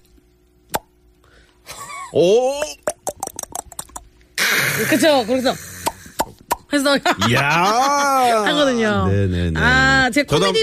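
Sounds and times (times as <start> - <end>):
voice imitating a bottle cap popping open with fizzing hiss: 0.7 - 0.9, 2.6 - 4.1, 5.8 - 6.7
speech: 2.1 - 2.8, 4.8 - 5.7, 6.7 - 10.6
laughter: 7.0 - 8.4.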